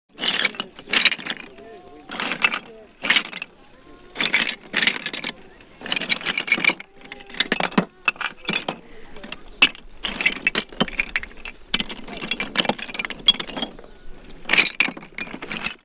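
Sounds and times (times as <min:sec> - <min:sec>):
oyster shells clattering in Whitstable: 0:00.1 - 0:15.8
baby: 0:03.6 - 0:09.4.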